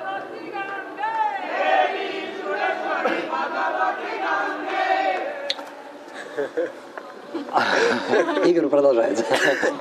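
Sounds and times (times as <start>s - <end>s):
crowd of many voices singing together: 0.0s - 6.1s
laughter: 6.1s - 9.7s
speech: 6.4s - 9.7s.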